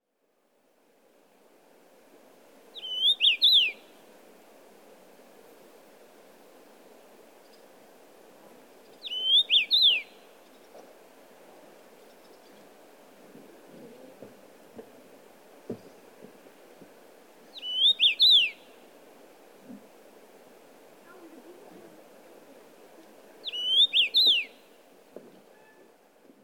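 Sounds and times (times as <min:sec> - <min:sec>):
Common Rosefinch calling: 0:02.8 - 0:03.8, 0:09.0 - 0:10.0, 0:17.5 - 0:18.6, 0:23.4 - 0:24.5.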